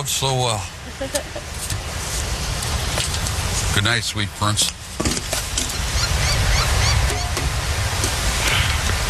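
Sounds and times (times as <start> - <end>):
speech: 0.0 - 1.8, 3.7 - 5.1
strong wind gusts across a seashore: 0.7 - 9.0
faint seabird calls: 5.7 - 7.4.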